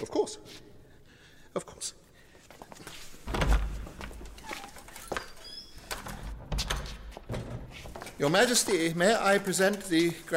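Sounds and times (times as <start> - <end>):
speech: 0.0 - 0.7, 1.5 - 2.0, 8.2 - 10.3
heavy door opening with a low thump: 3.3 - 9.0.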